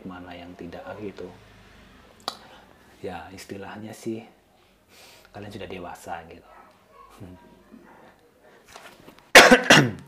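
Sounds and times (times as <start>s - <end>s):
speech: 1.0s - 1.5s, 3.0s - 6.5s, 7.2s - 7.5s
person coughing: 9.3s - 10.0s.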